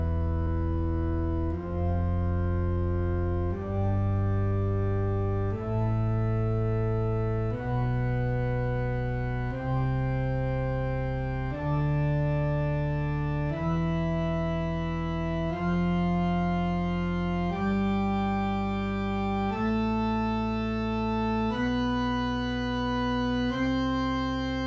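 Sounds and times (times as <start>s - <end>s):
test organ tone: 0.1s - 24.6s.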